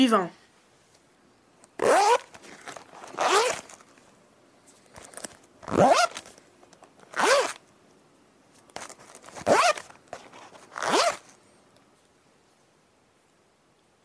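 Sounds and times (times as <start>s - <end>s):
speech: 0.0s - 0.4s
small pencil case zipper opening and closing: 1.8s - 3.9s, 4.9s - 6.4s, 7.0s - 7.6s, 8.8s - 11.4s.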